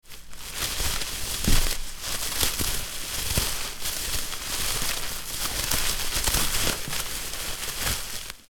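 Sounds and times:
fishing net rustling while handled: 0:00.0 - 0:08.5.

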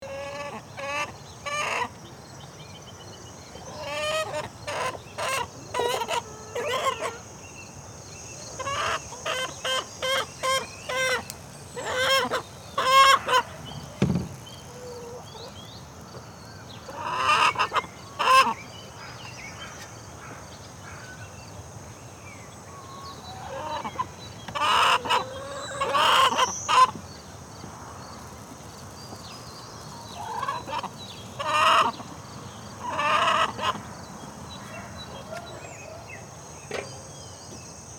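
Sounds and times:
farmyard chickens: 0:00.0 - 0:02.0, 0:03.6 - 0:07.4, 0:08.5 - 0:13.8, 0:14.6 - 0:15.6, 0:16.9 - 0:18.6, 0:23.3 - 0:27.0, 0:29.8 - 0:34.0.

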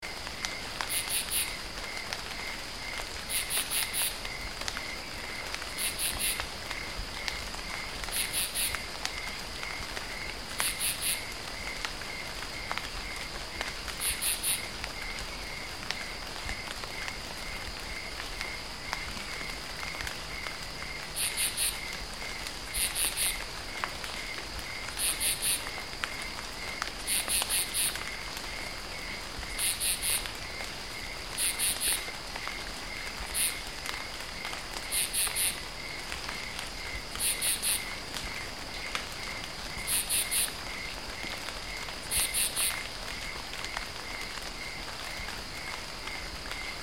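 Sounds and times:
light rain pattering in a forest: 0:00.0 - 0:46.8.

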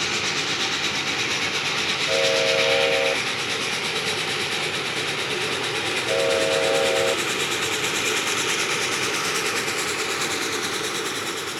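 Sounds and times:
RC toy train moving: 0:00.1 - 0:11.5
RC toy train whistle blowing: 0:02.1 - 0:03.2, 0:06.1 - 0:07.2.

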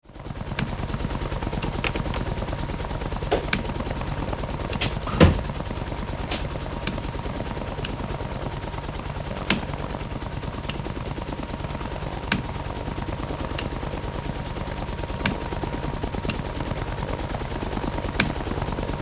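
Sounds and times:
helicopter starting up heard from interior: 0:00.0 - 0:19.0
buttons being pushed in helicopter interior: 0:01.6 - 0:02.4, 0:03.3 - 0:03.8, 0:04.7 - 0:05.6, 0:06.2 - 0:07.1, 0:09.4 - 0:09.8, 0:12.2 - 0:12.6, 0:15.1 - 0:15.5, 0:18.2 - 0:18.4.

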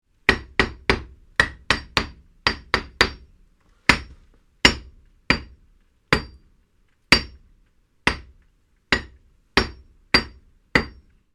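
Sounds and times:
hammer hitting a wall: 0:00.3 - 0:03.3, 0:03.9 - 0:06.4, 0:07.1 - 0:07.4, 0:08.1 - 0:11.1.

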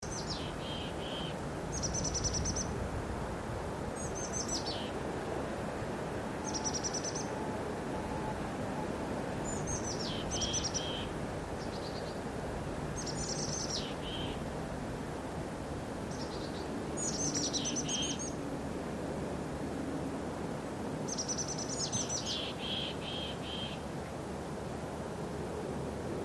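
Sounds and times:
birds singing: 0:00.0 - 0:02.7, 0:04.0 - 0:05.0, 0:06.4 - 0:07.4, 0:09.4 - 0:12.2, 0:13.0 - 0:14.4, 0:16.1 - 0:18.4, 0:21.1 - 0:23.8
light wind: 0:00.0 - 0:26.2.

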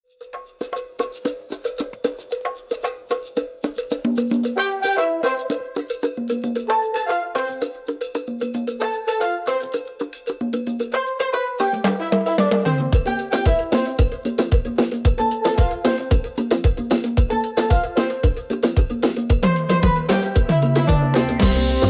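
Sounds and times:
tropical beat: 0:00.2 - 0:21.8.

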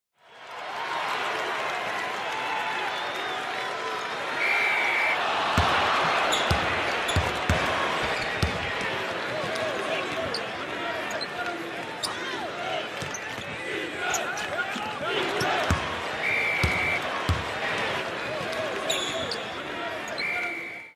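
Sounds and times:
basketball crowd cheering at a game: 0:00.2 - 0:20.9.

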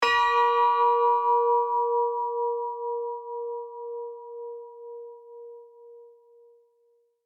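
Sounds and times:
church bell hit long and sustained: 0:00.0 - 0:04.5.

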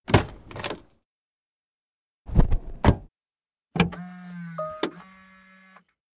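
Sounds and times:
car interior window motor: 0:03.8 - 0:05.8
car interior door beep signal: 0:04.5 - 0:05.4.

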